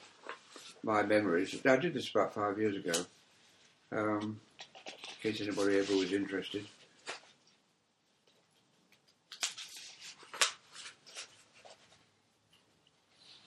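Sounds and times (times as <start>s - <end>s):
paper pages being shuffled and handled: 0.0s - 0.8s, 4.6s - 7.4s, 9.3s - 12.1s
speech: 0.8s - 3.2s, 3.9s - 4.5s, 5.2s - 6.8s.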